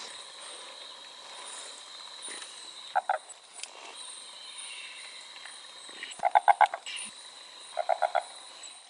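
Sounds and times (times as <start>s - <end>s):
insect drone: 0.0s - 8.8s
Fleay's barred frog croaking: 2.9s - 3.3s, 6.0s - 8.4s.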